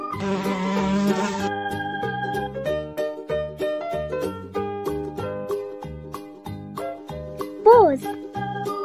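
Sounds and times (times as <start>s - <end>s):
bouncy cheerful children's tune: 0.0s - 8.8s
bee buzzing: 0.2s - 1.6s.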